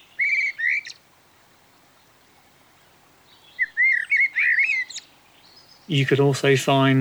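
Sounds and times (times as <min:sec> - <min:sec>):
blackbird singing: 0:00.0 - 0:01.0, 0:02.8 - 0:06.9
faint hiss: 0:00.0 - 0:06.9
speech: 0:05.9 - 0:06.9.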